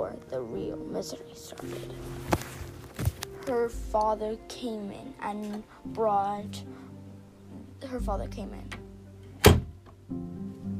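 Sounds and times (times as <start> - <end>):
speech: 0.1 - 6.8, 7.8 - 8.8, 10.1 - 10.4
door bumping: 9.4 - 9.9.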